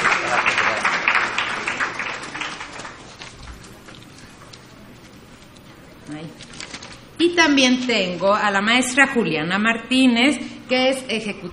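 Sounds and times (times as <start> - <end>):
crowd clapping to welcome a speaker: 0.0 - 4.5
speech: 7.2 - 11.5.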